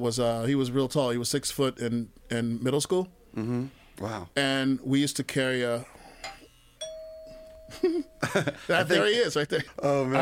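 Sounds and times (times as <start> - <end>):
speech: 0.0 - 6.0, 7.7 - 10.2
two-tone doorbell chime: 6.8 - 8.6.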